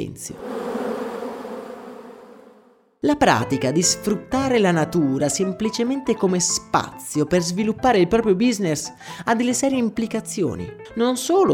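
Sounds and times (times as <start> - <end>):
speech: 0.0 - 0.6, 3.0 - 11.5
many honeybees buzzing together: 0.4 - 2.7.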